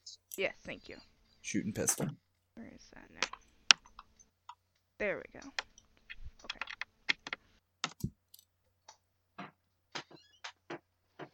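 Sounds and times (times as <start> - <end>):
speech: 0.1 - 3.5, 5.0 - 5.7
faint typing on a computer keyboard: 6.4 - 8.1.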